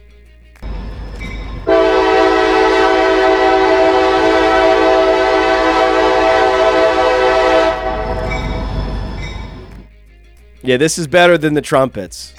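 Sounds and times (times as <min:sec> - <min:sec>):
rumbling rail noise of a train rolling by: 0:00.6 - 0:09.9
train horn blaring: 0:00.6 - 0:09.9
speech: 0:10.6 - 0:12.3.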